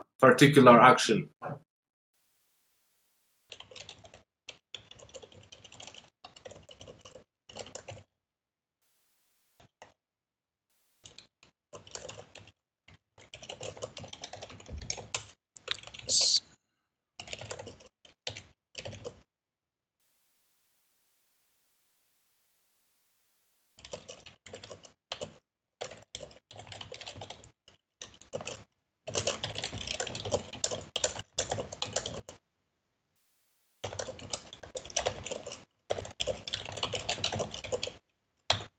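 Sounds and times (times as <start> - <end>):
speech: 0.2 - 1.6
computer keyboard typing: 3.5 - 8.1, 11.1 - 16.4, 17.2 - 19.2, 23.8 - 32.4, 33.8 - 38.7.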